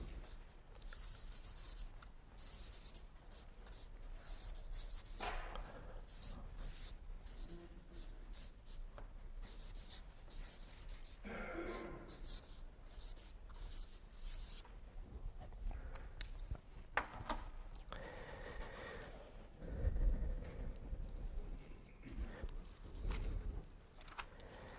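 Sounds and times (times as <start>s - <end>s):
writing on a board: 0.0s - 14.6s
steady low noise: 0.0s - 24.7s.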